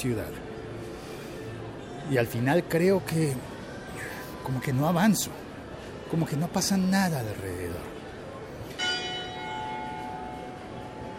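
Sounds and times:
speech: 0:00.0 - 0:00.4, 0:02.1 - 0:03.5, 0:04.5 - 0:05.4, 0:06.1 - 0:07.9
church bell ringing: 0:08.8 - 0:11.1.

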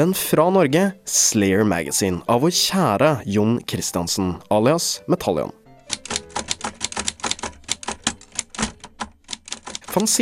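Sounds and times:
speech: 0:00.0 - 0:05.6, 0:10.0 - 0:10.2
typewriter typing: 0:05.9 - 0:10.2.

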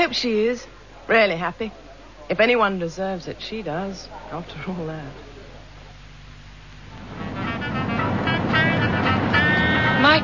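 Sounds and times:
speech: 0:00.0 - 0:05.3, 0:10.0 - 0:10.2
car driving along a road toward Devon: 0:07.0 - 0:10.2.

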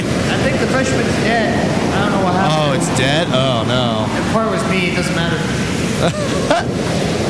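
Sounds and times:
big ocean waves roaring: 0:00.0 - 0:07.2
faint voice-like murmurs: 0:02.0 - 0:04.4, 0:06.0 - 0:06.8
laughter: 0:02.0 - 0:05.2, 0:05.8 - 0:06.8
speech: 0:03.0 - 0:07.2.

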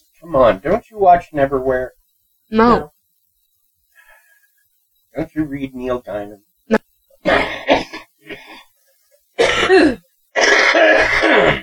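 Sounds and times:
speech: 0:00.2 - 0:03.0, 0:05.2 - 0:08.6, 0:09.7 - 0:11.6
harsh congested coughing: 0:07.2 - 0:08.5, 0:09.4 - 0:11.6
throat clearing: 0:09.4 - 0:11.6.

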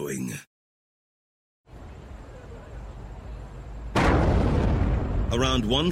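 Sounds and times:
speech: 0:00.0 - 0:00.5, 0:05.3 - 0:05.8
low rumbling ambience: 0:01.7 - 0:05.8
subway station explosion: 0:03.9 - 0:05.8.

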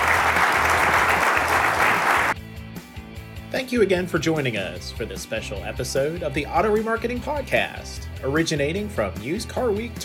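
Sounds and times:
audience applauding panelists at a used-car industry conference in San Diego: 0:00.0 - 0:02.4
speech: 0:03.7 - 0:10.0.

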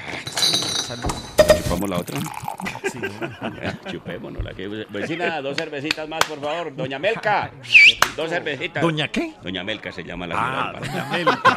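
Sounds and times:
glasses clinking in a toast: 0:00.0 - 0:02.6
speech: 0:00.9 - 0:01.2, 0:01.8 - 0:11.5
laughter: 0:02.6 - 0:05.6, 0:10.4 - 0:11.5.

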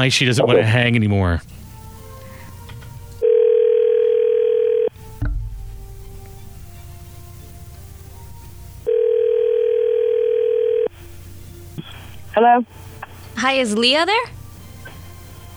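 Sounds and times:
speech: 0:00.0 - 0:01.6, 0:12.4 - 0:14.4
telephone ringback tones as a call is placed: 0:03.2 - 0:05.0, 0:08.8 - 0:11.0.

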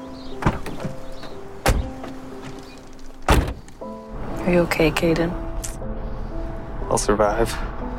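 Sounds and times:
car door thuds as people get into a car: 0:00.3 - 0:03.8
speech: 0:04.5 - 0:05.4, 0:06.9 - 0:07.8.

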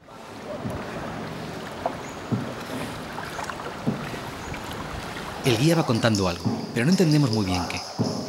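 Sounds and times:
steady hiss of water in a dark cave: 0:00.1 - 0:08.2
boat pole knocking dully against rock in an underground river cave: 0:01.8 - 0:02.8, 0:03.8 - 0:04.2, 0:06.3 - 0:06.9, 0:07.9 - 0:08.2
speech: 0:05.4 - 0:07.9.

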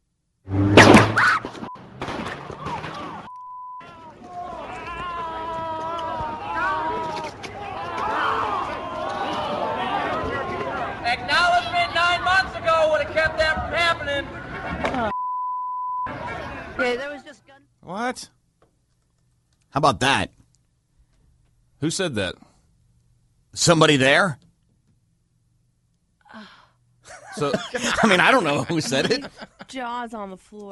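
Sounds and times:
gunshot cracks at a street protest: 0:00.7 - 0:01.3
crowd shouting and talking outdoors: 0:02.2 - 0:15.2, 0:16.0 - 0:17.3
bleep tones: 0:03.3 - 0:03.9, 0:15.1 - 0:16.1
speech: 0:19.8 - 0:20.4, 0:21.8 - 0:22.4, 0:23.6 - 0:24.4, 0:27.4 - 0:30.6
laughter: 0:27.1 - 0:29.9.

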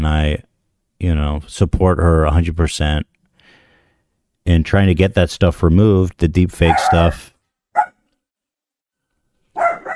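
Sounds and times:
speech: 0:00.0 - 0:03.1, 0:04.4 - 0:07.3
dog barking: 0:06.7 - 0:07.2, 0:07.8 - 0:08.0, 0:09.6 - 0:09.9.

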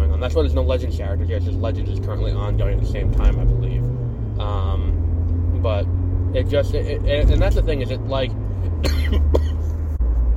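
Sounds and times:
speech: 0:00.2 - 0:05.0, 0:05.6 - 0:09.5
sharp coughs: 0:08.8 - 0:09.7.

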